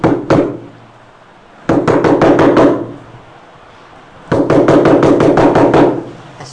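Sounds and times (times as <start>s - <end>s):
knocking on a door: 0.0s - 0.7s, 1.7s - 3.0s, 4.3s - 6.1s.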